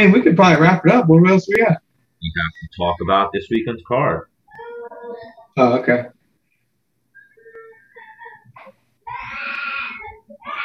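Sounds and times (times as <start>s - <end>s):
speech: 0.0s - 4.3s, 5.1s - 6.2s
small child crying in whimpering sobs and wails: 4.5s - 5.5s, 7.4s - 10.6s.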